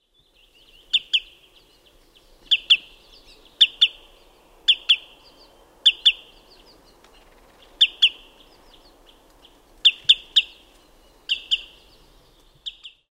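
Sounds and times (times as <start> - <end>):
wood sandpiper calling: 2.5 - 6.4, 7.8 - 8.3, 9.8 - 10.6, 11.3 - 11.8.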